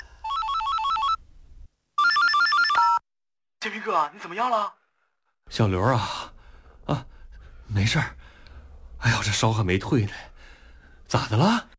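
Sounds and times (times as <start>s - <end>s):
electronic telephone ringtone: 0.0s - 1.2s, 2.0s - 3.0s
speech: 3.7s - 4.8s, 5.5s - 7.1s, 7.7s - 8.2s, 9.0s - 10.3s, 11.1s - 11.7s.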